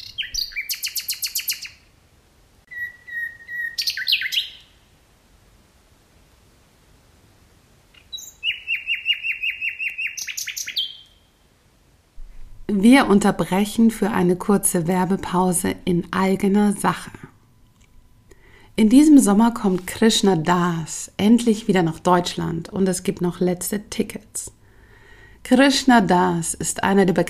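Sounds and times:
nightingale singing: 0:00.0 - 0:01.8, 0:02.7 - 0:04.9, 0:08.0 - 0:11.4
speech: 0:12.8 - 0:17.2, 0:18.8 - 0:24.6, 0:25.4 - 0:27.2.

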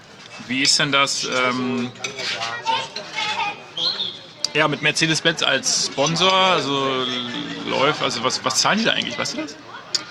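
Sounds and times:
metal cutlery scraping and clinking on a crockery plate as food is cut: 0:00.2 - 0:03.5
speech: 0:00.4 - 0:02.5, 0:04.6 - 0:09.8.

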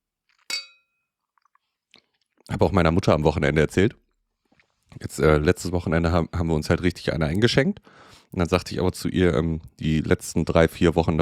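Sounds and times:
two drinking glasses clinking in a toast: 0:00.5 - 0:00.9
speech: 0:02.5 - 0:04.0, 0:05.0 - 0:11.2.

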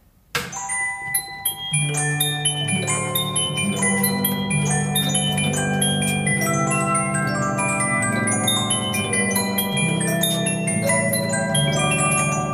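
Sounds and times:
antique disc music box with punched steel plate playing: 0:00.5 - 0:12.5.

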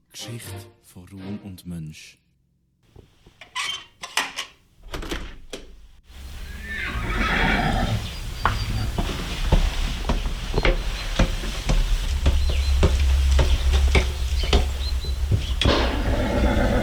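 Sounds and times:
speech: 0:00.2 - 0:02.2
shuffling in a stable: 0:05.6 - 0:16.8
hungry horses whinnying and snorting in a stable on a misty morning: 0:06.1 - 0:16.8.

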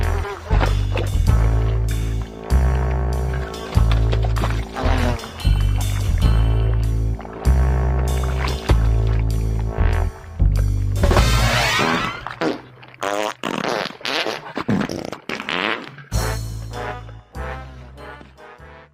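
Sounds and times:
loud buzzy fart sound effects: 0:00.0 - 0:01.8, 0:02.6 - 0:05.4, 0:11.0 - 0:16.4
busy music backdrop: 0:00.0 - 0:12.8, 0:16.1 - 0:18.9.

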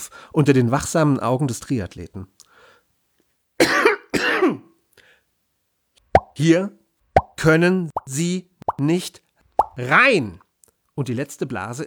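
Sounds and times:
speech: 0:00.0 - 0:02.4, 0:06.4 - 0:06.8, 0:07.4 - 0:09.2, 0:09.8 - 0:10.4, 0:11.0 - 0:11.8
harsh raspy throaty coughs: 0:03.6 - 0:04.7.

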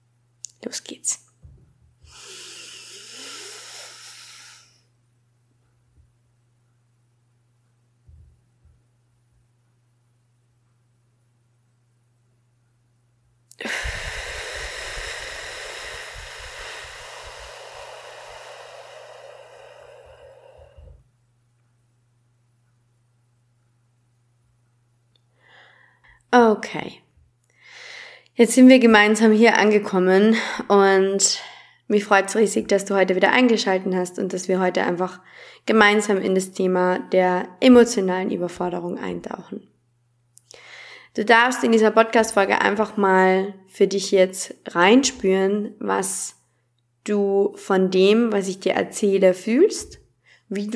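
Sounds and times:
faint steady hum: 0:00.0 - 0:50.7
speech: 0:00.6 - 0:01.3, 0:26.5 - 0:27.0, 0:28.4 - 0:39.7, 0:41.2 - 0:46.4, 0:47.0 - 0:50.7
slow airy inhale during a guided breathing exercise: 0:02.0 - 0:04.9, 0:13.6 - 0:21.1, 0:25.3 - 0:26.2, 0:27.5 - 0:28.3, 0:35.2 - 0:35.6, 0:40.5 - 0:41.2
loud drawn-out exhale during a guided breathing exercise: 0:02.1 - 0:04.8, 0:13.6 - 0:21.0.

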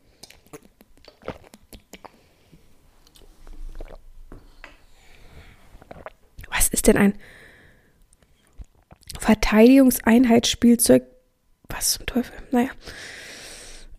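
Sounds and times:
soft liquid noises of someone drinking: 0:00.1 - 0:06.6
wet mouth clicks and smacks of someone drinking: 0:00.2 - 0:02.2, 0:03.0 - 0:04.0
gulping swallows of someone drinking: 0:00.6 - 0:02.2, 0:03.5 - 0:04.0
speech: 0:06.8 - 0:07.4, 0:09.5 - 0:11.1, 0:11.8 - 0:13.2.

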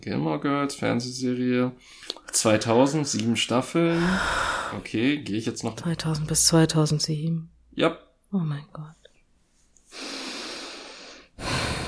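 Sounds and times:
speech: 0:00.0 - 0:09.0
heavy breathing: 0:03.9 - 0:04.9, 0:09.9 - 0:11.8.

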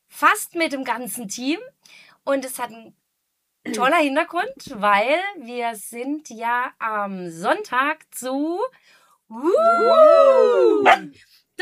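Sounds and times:
speech: 0:00.2 - 0:03.0, 0:03.6 - 0:11.6
dog barking: 0:10.9 - 0:11.1.

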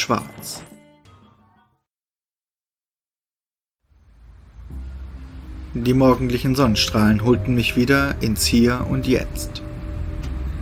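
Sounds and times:
speech: 0:00.0 - 0:00.6, 0:05.8 - 0:09.7
deep engine rumble of a Peugeot 403 car approaching: 0:04.0 - 0:10.5.

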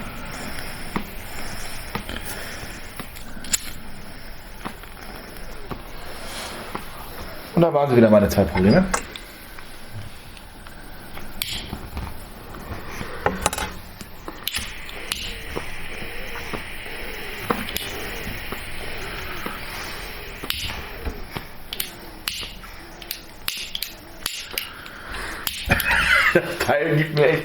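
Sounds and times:
gas hissing from a lighter held vertically: 0:00.0 - 0:26.7
speech: 0:07.6 - 0:09.1
lighter striker mechanical clicks: 0:21.7 - 0:24.7
laughter: 0:25.7 - 0:27.4.

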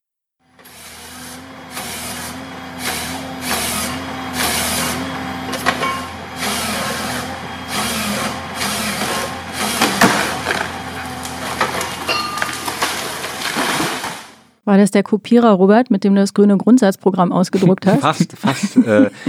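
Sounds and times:
heavy machinery engine drone felling trees for motorway construction: 0:00.5 - 0:14.5
speech: 0:14.7 - 0:19.2
laughter: 0:17.5 - 0:19.2.

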